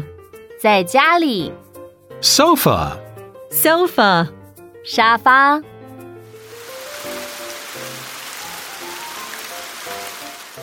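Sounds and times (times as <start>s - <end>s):
speech: 0.0s - 1.6s, 2.2s - 5.7s
rain falling: 6.3s - 10.6s.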